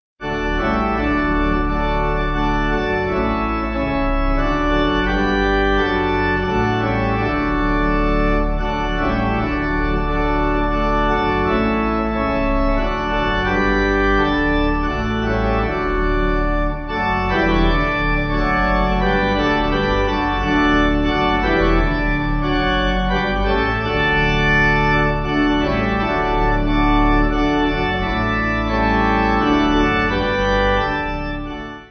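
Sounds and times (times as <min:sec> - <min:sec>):
pipe organ playing: 0:00.2 - 0:31.8.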